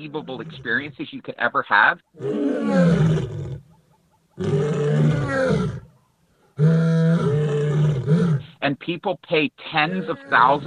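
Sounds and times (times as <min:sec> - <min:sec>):
lions roaring: 0:00.0 - 0:01.0, 0:02.2 - 0:03.6, 0:04.4 - 0:05.9, 0:06.6 - 0:08.5, 0:09.8 - 0:10.6
speech: 0:00.0 - 0:03.6, 0:04.4 - 0:05.7, 0:08.6 - 0:10.6.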